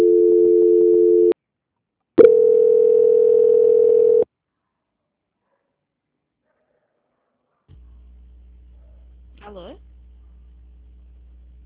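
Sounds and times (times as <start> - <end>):
telephone tones during a call transfer: 0.0 - 1.4, 2.2 - 4.3.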